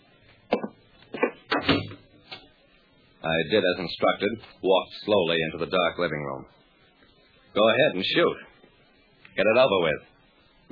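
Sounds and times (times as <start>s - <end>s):
apartment door pushed shut: 1.5s - 2.0s
speech: 3.2s - 6.6s, 7.6s - 8.5s, 9.4s - 10.1s.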